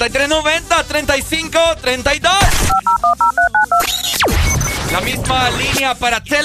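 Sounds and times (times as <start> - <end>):
speech: 0.0 - 3.3, 5.0 - 6.4
touch-tone telephone keypad beeps: 2.7 - 3.9.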